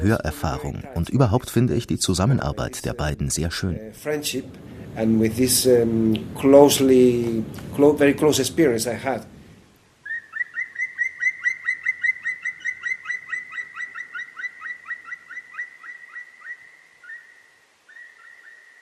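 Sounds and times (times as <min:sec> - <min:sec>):
speech: 0:00.0 - 0:09.4
bird singing clear whistled notes: 0:10.0 - 0:18.8.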